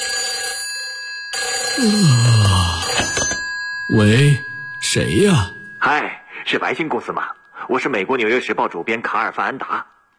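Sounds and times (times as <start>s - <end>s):
telephone bell ringing at a shipping company's duty desk: 0.0s - 6.2s
speech: 1.8s - 2.5s, 3.9s - 9.9s.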